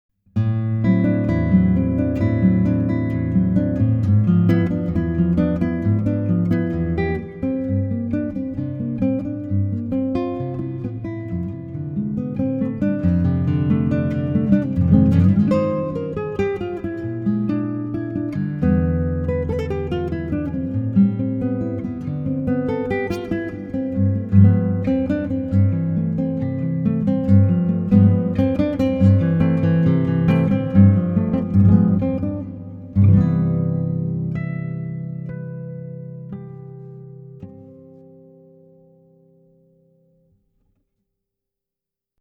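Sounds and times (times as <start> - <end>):
Brazilian classical guitar: 0.3 - 40.9.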